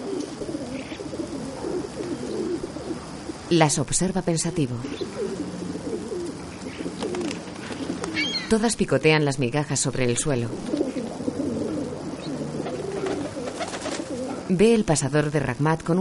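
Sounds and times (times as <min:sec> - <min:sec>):
several pigeons cooing on a rooftop: 0:00.0 - 0:03.5, 0:04.3 - 0:09.3, 0:10.0 - 0:14.5
speech: 0:03.5 - 0:05.4, 0:08.5 - 0:10.8, 0:14.5 - 0:15.9
pigeon wings flapping: 0:06.2 - 0:08.5, 0:12.5 - 0:14.5.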